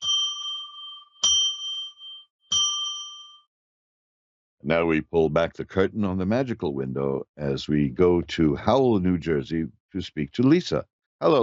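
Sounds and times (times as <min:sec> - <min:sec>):
metallic bell ringing: 0:00.0 - 0:03.5
speech: 0:04.6 - 0:11.4.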